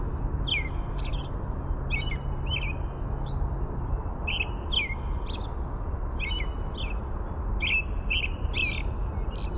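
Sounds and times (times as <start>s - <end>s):
American robin song: 0.1s - 9.5s.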